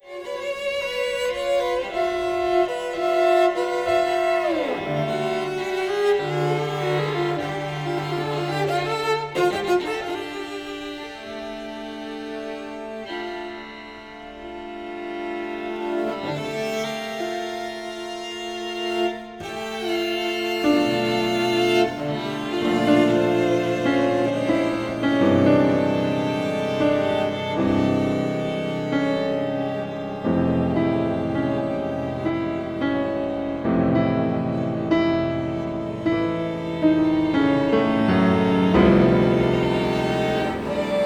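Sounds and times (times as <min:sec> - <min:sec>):
cello in a piano trio: 0:00.0 - 0:41.0
piano in a piano trio: 0:00.0 - 0:41.0
violin in a piano trio: 0:00.0 - 0:41.0.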